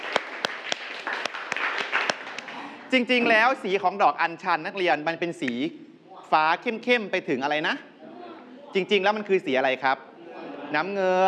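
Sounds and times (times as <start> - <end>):
students clapping hands in a classroom: 0.0 - 2.8
speech: 2.9 - 7.9, 8.7 - 10.1, 10.7 - 11.2.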